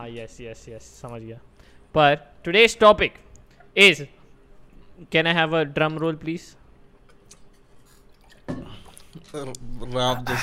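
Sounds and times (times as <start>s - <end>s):
speech: 0.0s - 4.2s, 5.0s - 6.6s, 9.3s - 10.4s
person drinking water: 7.2s - 9.7s
wet gulp: 7.3s - 9.6s.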